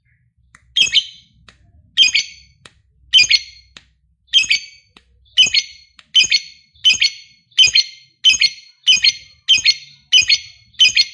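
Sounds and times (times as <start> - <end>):
lovebird squawks: 0.8 - 1.3, 2.0 - 2.5, 3.2 - 3.7, 4.3 - 4.8, 5.4 - 11.1.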